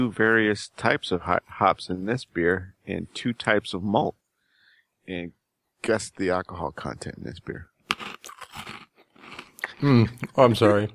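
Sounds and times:
speech: 0.0s - 4.2s, 5.1s - 7.7s, 9.8s - 10.9s
crunchy chewing at the microphone: 7.8s - 10.4s.

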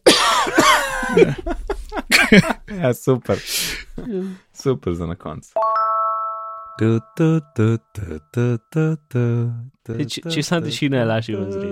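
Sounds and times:
loud harsh raspy coughing: 0.0s - 1.4s
speech: 1.2s - 1.6s, 2.3s - 6.0s, 6.8s - 11.7s.

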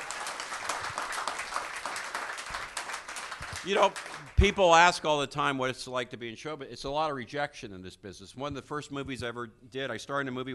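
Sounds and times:
crowd applauding: 0.0s - 4.9s
speech: 3.6s - 10.5s.

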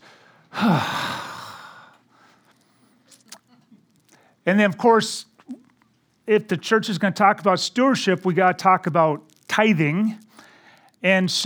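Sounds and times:
speech: 0.6s - 1.0s, 4.5s - 5.3s, 6.3s - 10.2s, 11.0s - 11.4s
church audience groaning together: 0.6s - 1.7s.

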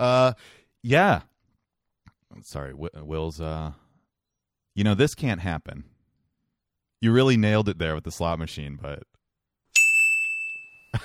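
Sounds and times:
speech: 0.0s - 1.3s, 2.3s - 3.8s, 4.8s - 5.9s, 7.0s - 9.1s
bright ding chime: 9.8s - 11.0s.

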